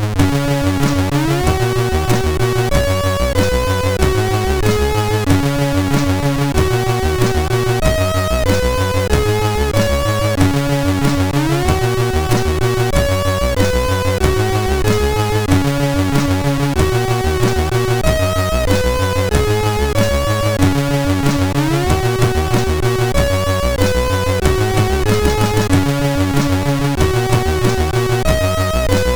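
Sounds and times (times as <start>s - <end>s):
MOS6581 chiptune game complete jingle: 0.2s - 29.1s.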